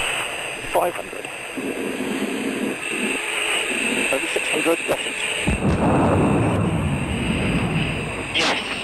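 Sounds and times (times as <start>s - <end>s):
roaring engine noise of supersonic record car: 0.0s - 8.8s
speech: 0.7s - 6.4s
sonic boom of supersonic record car in the Nevada desert: 5.5s - 8.8s.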